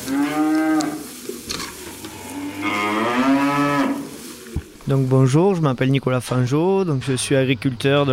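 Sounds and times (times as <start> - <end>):
Holstein dairy cows mooing on a dairy farm in southern Aveyron France: 0.0 - 4.2
faint barn noise: 0.0 - 8.1
speech: 4.9 - 8.1.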